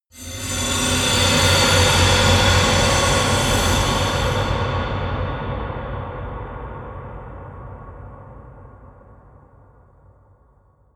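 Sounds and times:
eerie industrial swell: 0.2s - 5.3s.

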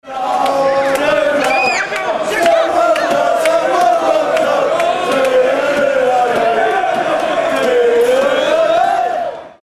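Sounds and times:
soccer fans celebrating in the UK: 0.0s - 9.6s.

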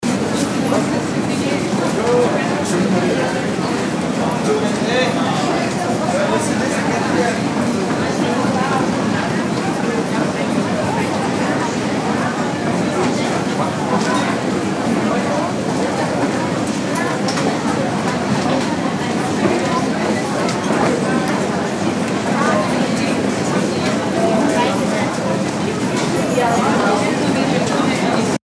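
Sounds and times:
crowded department store crowd: 0.0s - 28.4s.

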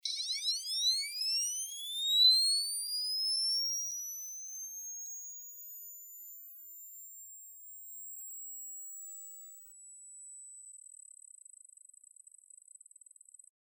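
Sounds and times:
electronic flash charging: 0.0s - 9.7s.

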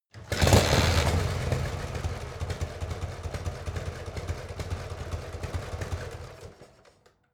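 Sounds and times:
Harley motorcycle kickstarter: 0.1s - 2.2s
Harley motorcycle engine turning on and off: 0.1s - 7.2s.

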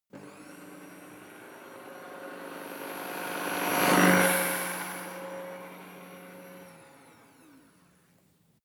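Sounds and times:
humming drone flying by: 1.6s - 7.6s.

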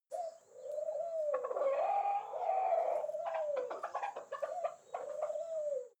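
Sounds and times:
pigeon cooing: 0.0s - 5.9s
hens clucking: 1.1s - 5.8s.

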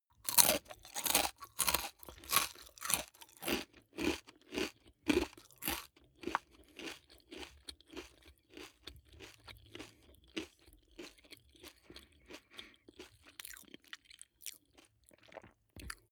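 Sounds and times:
person eating large potato chip with mouth closed: 0.2s - 11.8s.

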